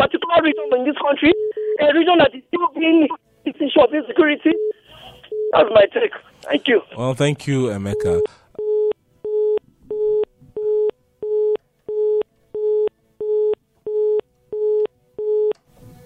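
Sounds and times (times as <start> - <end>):
speech: 0.0 - 4.8, 5.5 - 8.4
faint noise: 0.0 - 16.0
telephone busy tone after dropped call: 0.4 - 1.8, 4.5 - 5.6, 7.9 - 15.6.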